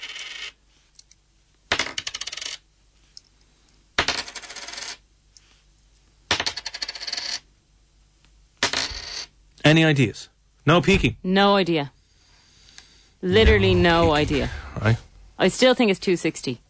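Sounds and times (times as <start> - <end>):
coins dropped onto a hard surface: 0.0 - 0.6, 1.7 - 2.6, 4.0 - 5.0, 6.3 - 7.5, 8.6 - 9.3
speech: 9.7 - 12.0, 13.2 - 16.6.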